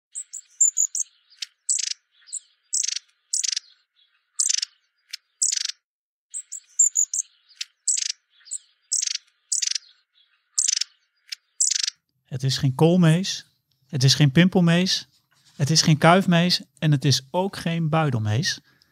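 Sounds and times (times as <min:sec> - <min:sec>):
long-tailed tit calling with buzzy notes and high thin whistles: 0:00.1 - 0:12.0
speech: 0:12.3 - 0:18.7.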